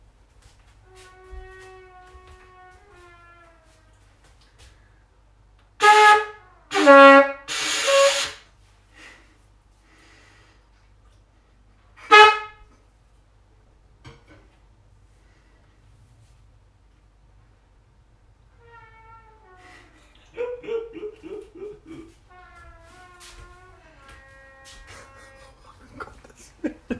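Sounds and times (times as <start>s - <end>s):
trumpet battle: 5.8s - 8.3s
laughter: 20.0s - 22.2s, 24.9s - 26.9s.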